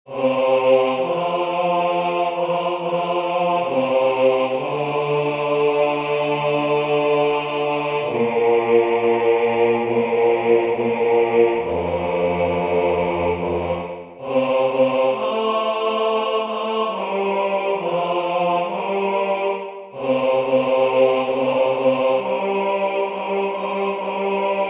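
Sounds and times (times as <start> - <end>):
bass part of a sung prayer: 0.1 - 24.6.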